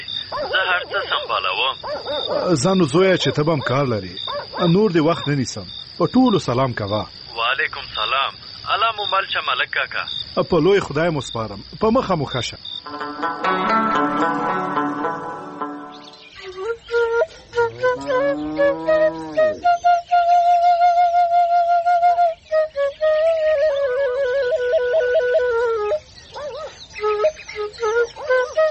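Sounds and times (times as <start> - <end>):
speech: 0.0 - 14.7
whistle blown in a melodic run of clear tones: 14.2 - 28.6.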